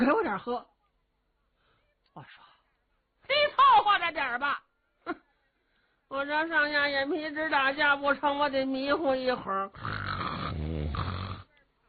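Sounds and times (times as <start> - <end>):
speech: 0.4 - 0.8, 2.2 - 2.5, 3.3 - 5.2, 6.1 - 10.2
person imitating a sleeping soldier's snoring: 9.7 - 11.5.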